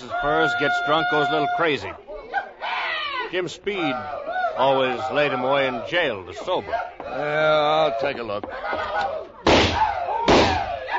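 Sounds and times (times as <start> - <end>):
speech: 0.2 - 2.1, 3.3 - 9.2
gunshots from an old trapper's gun: 9.4 - 10.8.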